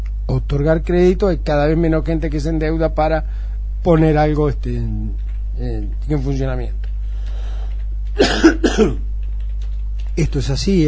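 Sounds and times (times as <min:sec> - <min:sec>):
steady hum: 0:00.0 - 0:10.8
speech: 0:00.3 - 0:06.9, 0:08.2 - 0:09.1, 0:10.2 - 0:10.8
person with the flu coughing: 0:08.2 - 0:09.1.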